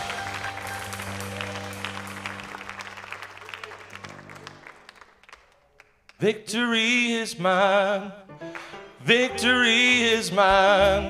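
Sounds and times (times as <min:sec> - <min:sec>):
audience clapping in sustained applause: 0:00.0 - 0:06.2
speech: 0:06.2 - 0:08.4, 0:09.1 - 0:11.0.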